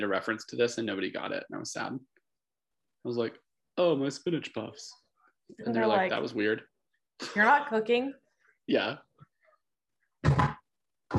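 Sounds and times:
speech: 0:00.0 - 0:02.2, 0:03.0 - 0:09.1
heavy object toppling onto a hard surface with a thunk: 0:10.2 - 0:11.1.

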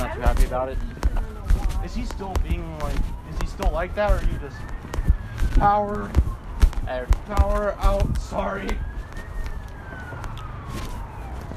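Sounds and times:
emergency vehicle siren wailing while passing by: 0:00.0 - 0:11.5
low rumble of traffic noise: 0:00.0 - 0:11.5
speech: 0:00.2 - 0:01.0, 0:01.8 - 0:04.8, 0:05.4 - 0:08.9.

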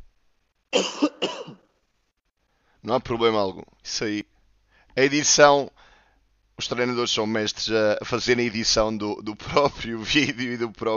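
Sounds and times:
speech: 0:00.8 - 0:01.4, 0:02.8 - 0:04.3, 0:05.0 - 0:05.9, 0:06.6 - 0:10.9
two players clearing their throats: 0:00.8 - 0:01.6.

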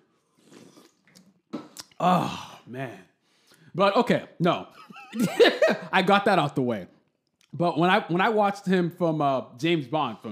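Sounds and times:
person slurping an energy drink: 0:00.0 - 0:02.0
wet mouth smacking: 0:00.4 - 0:02.0
speech: 0:02.0 - 0:03.1, 0:03.7 - 0:10.2
laughter: 0:04.9 - 0:06.0.

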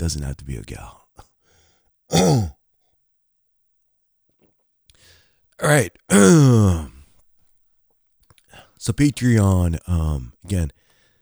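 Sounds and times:
speech: 0:00.0 - 0:01.0, 0:02.1 - 0:02.6, 0:05.6 - 0:06.9, 0:08.8 - 0:10.8
throat clearing: 0:02.1 - 0:02.6, 0:06.1 - 0:07.0.

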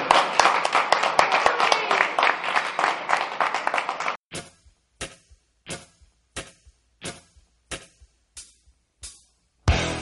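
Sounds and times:
applause from a small crowd: 0:00.0 - 0:04.2.

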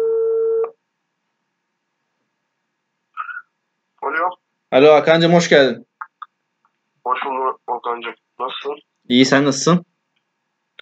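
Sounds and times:
telephone ringback tone: 0:00.0 - 0:00.7
voice answering over the telephone line: 0:04.0 - 0:04.4, 0:07.1 - 0:08.8
speech: 0:04.7 - 0:05.9, 0:08.0 - 0:09.9.

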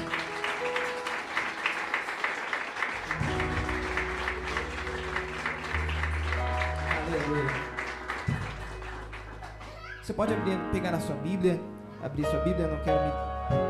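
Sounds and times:
crowd applauding in a large room: 0:00.0 - 0:10.6
sustained low organ or keyboard tones: 0:02.9 - 0:13.6
speech: 0:10.1 - 0:13.6.

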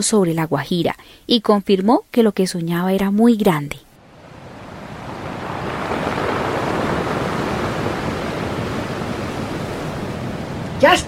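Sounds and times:
speech: 0:00.0 - 0:03.9, 0:10.8 - 0:11.0
sea surf breaking on a shore at Manaure, La Guajira: 0:04.0 - 0:11.0.

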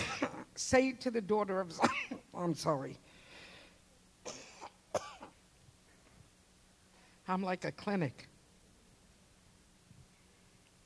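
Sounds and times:
harsh coughs: 0:00.0 - 0:00.4, 0:01.8 - 0:02.2, 0:04.2 - 0:05.4
raspy throat clearing: 0:00.0 - 0:00.5, 0:04.3 - 0:05.4
speech: 0:00.6 - 0:03.1, 0:07.3 - 0:08.3.

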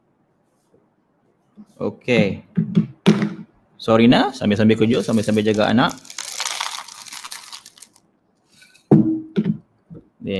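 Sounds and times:
speech: 0:01.6 - 0:03.2, 0:03.8 - 0:06.1
dry cereal pouring into a bowl: 0:04.9 - 0:08.0.

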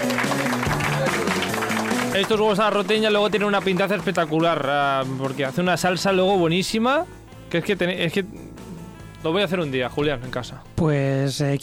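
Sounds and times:
group applause: 0:00.0 - 0:04.7
tonal musical backdrop: 0:00.0 - 0:11.6
speech: 0:02.2 - 0:08.4, 0:09.2 - 0:11.6.

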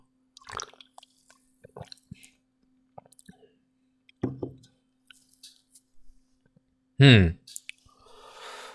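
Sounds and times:
person sipping and swallowing fruit punch from a can: 0:00.4 - 0:02.4
speech: 0:07.0 - 0:07.4.

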